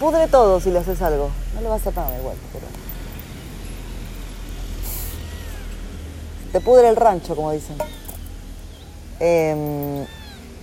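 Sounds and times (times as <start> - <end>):
speech: 0.0 - 2.9, 6.5 - 8.0, 9.2 - 10.2
cat meowing: 4.8 - 10.6.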